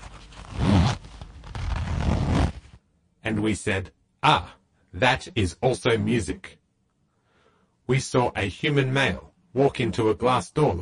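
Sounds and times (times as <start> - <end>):
zipper on a trouser fly being pulled up: 0.0 - 2.8
speech: 3.3 - 6.6, 7.9 - 10.8.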